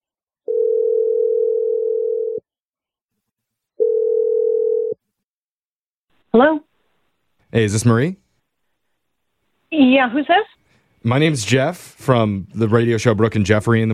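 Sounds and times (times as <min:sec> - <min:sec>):
outgoing telephone call ringing tones: 0:00.5 - 0:02.4, 0:03.8 - 0:05.0
speech: 0:07.5 - 0:08.2, 0:09.8 - 0:13.9.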